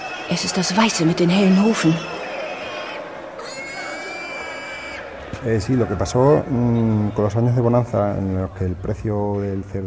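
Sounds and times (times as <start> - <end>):
agitated pig squealing in a shrill strained cry: 0.0 - 5.1
speech: 0.3 - 2.2, 5.4 - 9.8.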